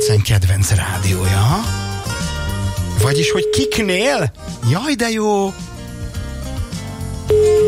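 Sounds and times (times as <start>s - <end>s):
music bed: 0.0s - 7.6s
speech: 0.1s - 1.9s, 3.0s - 5.6s
telephone ringing tone while a radio phone-in contestant is called: 3.0s - 3.9s, 7.3s - 7.6s.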